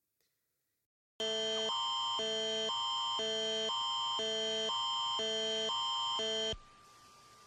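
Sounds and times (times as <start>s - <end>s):
Amber Alert emergency alarm tone on a mobile phone: 1.2s - 6.6s.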